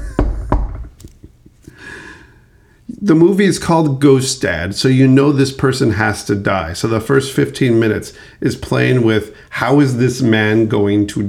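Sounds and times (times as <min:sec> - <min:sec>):
knocking on a wooden surface: 0:00.0 - 0:01.0
speech: 0:03.0 - 0:11.2.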